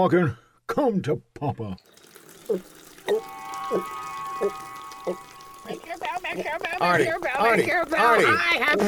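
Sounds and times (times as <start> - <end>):
speech: 0.0 - 8.8
coffee dripping from a spigot: 1.8 - 8.8.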